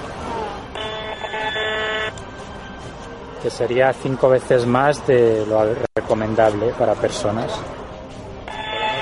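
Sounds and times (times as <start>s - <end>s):
low noise: 0.0s - 9.0s
electromagnetic radiation meter buzzing while measuring rooftop antenna radio waves in a park: 0.8s - 2.1s, 8.5s - 9.0s
speech: 3.4s - 7.8s.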